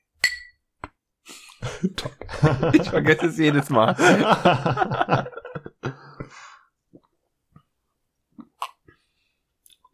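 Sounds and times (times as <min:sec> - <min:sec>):
glasses of cola clinking in a toast: 0:00.2 - 0:00.6
laughter: 0:01.6 - 0:06.3
speech: 0:01.8 - 0:05.4.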